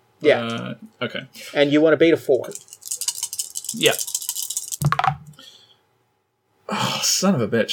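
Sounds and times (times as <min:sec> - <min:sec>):
speech: 0:00.2 - 0:02.8, 0:03.7 - 0:04.1, 0:06.7 - 0:07.7
dice rolled across a table during a game: 0:02.4 - 0:05.4.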